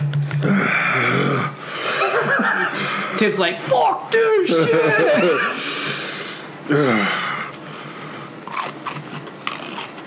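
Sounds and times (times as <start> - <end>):
speech: 0.4 - 0.8, 3.2 - 5.8, 6.7 - 7.2
gasping and groaning breaths and snorts: 0.4 - 2.1, 5.4 - 8.8
laughter: 1.8 - 3.0, 4.5 - 5.6
person chewing crunchy food: 8.2 - 10.0.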